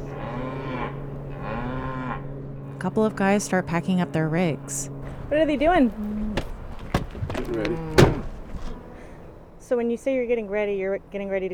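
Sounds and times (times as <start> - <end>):
cattle mooing in distress: 0.0 - 8.8
speech: 2.8 - 6.4, 7.5 - 8.0, 9.7 - 11.5.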